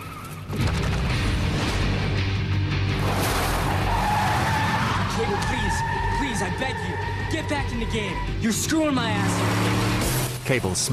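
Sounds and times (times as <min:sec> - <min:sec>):
4x4 tires squealing: 0:00.0 - 0:00.6, 0:03.1 - 0:10.6
4x4 engine roaring out of an underground car park: 0:00.4 - 0:10.9
speech: 0:07.8 - 0:09.9, 0:10.5 - 0:10.9.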